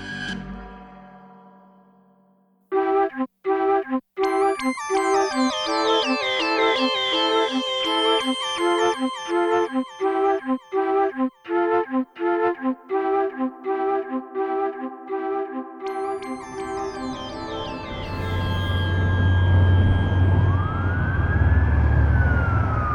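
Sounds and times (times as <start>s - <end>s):
plucked rhythmic music: 2.7s - 19.0s
police car siren wailing and sweeping up and down: 10.1s - 22.9s
heavy rumble of engine and road noise: 19.0s - 22.9s.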